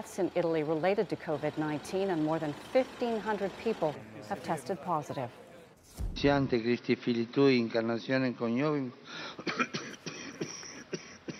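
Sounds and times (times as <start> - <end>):
speech: 0.0 - 9.9
man with a cold coughing in harsh bursts: 9.3 - 11.3.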